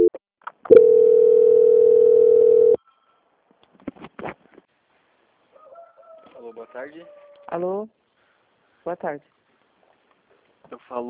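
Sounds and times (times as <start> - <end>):
telephone line tone during a call transfer: 0.7 - 3.1
speech: 6.7 - 8.0, 8.8 - 9.4, 10.7 - 11.0.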